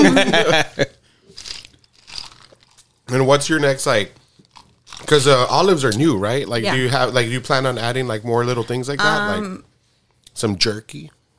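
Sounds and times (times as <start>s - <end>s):
laughter: 0.0s - 0.9s
speech: 0.0s - 0.9s, 3.1s - 4.2s, 5.0s - 9.7s, 10.4s - 11.2s
crunching and chewing: 1.3s - 3.1s, 4.2s - 5.6s
crisp bite into a snack from a jar: 1.4s - 2.9s, 4.4s - 5.2s.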